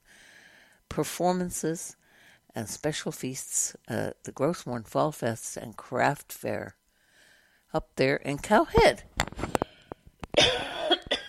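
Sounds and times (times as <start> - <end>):
speech: 1.0 - 2.0, 2.6 - 6.8, 7.7 - 9.4
person with a slight morning cough coughing: 10.4 - 11.2.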